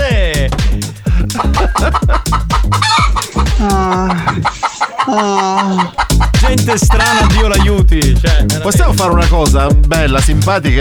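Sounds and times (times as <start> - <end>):
laughter: 0.0 - 10.7
chicken clucking: 0.4 - 7.8
speech: 1.8 - 2.3, 3.6 - 10.7.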